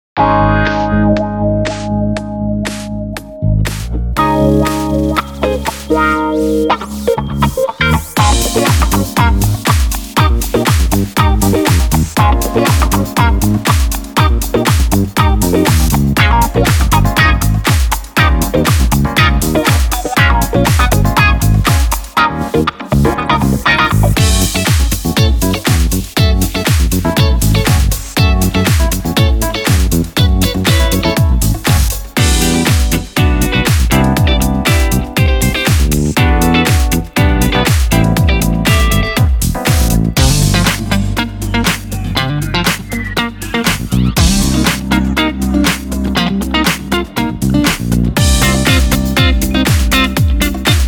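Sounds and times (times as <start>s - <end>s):
funky guitar playing: 0.2s - 50.8s.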